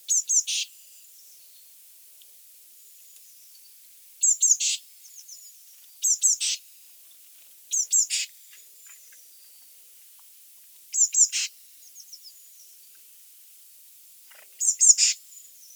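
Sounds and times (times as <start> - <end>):
Eurasian blue tit Cyanistes caeruleus calling: 0.1 - 0.7, 4.2 - 5.3, 6.0 - 6.6, 7.7 - 8.3, 10.9 - 11.5, 14.6 - 15.2.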